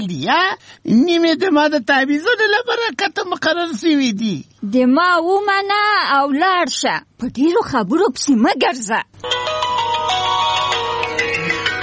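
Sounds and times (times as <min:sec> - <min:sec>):
speech: 0:00.0 - 0:09.6
mobile phone ringing with a melodic electronic ringtone: 0:09.2 - 0:11.8.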